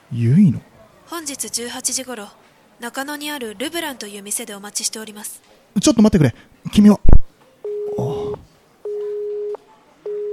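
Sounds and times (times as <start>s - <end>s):
speech: 0.1s - 7.1s
telephone busy tone after hang-up: 7.6s - 10.3s.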